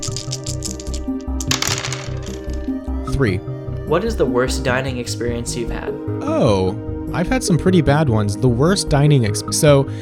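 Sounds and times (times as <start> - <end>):
dice clattering and tumbling across a hard surface: 0.0 - 2.8
speech: 3.2 - 9.9.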